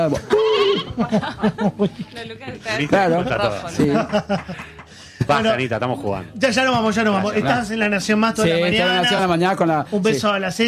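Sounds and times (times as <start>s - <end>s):
laughter: 0.0s - 2.3s, 3.4s - 5.2s
speech: 0.0s - 4.7s, 5.3s - 10.6s
person imitating a sheep bleating: 0.3s - 1.0s.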